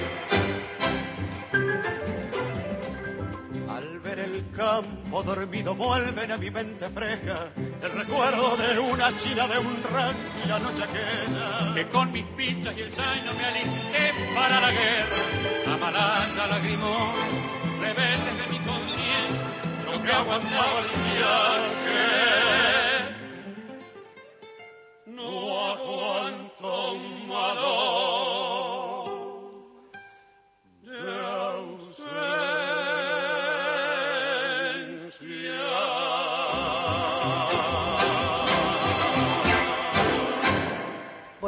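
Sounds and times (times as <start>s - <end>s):
tango orchestra playing a malambo tune: 0.0s - 6.4s, 7.0s - 23.4s, 36.9s - 41.4s
two singers' voices with tango orchestra: 3.7s - 23.6s, 25.1s - 29.6s, 30.8s - 41.3s
speech: 4.6s - 18.2s, 20.0s - 22.3s.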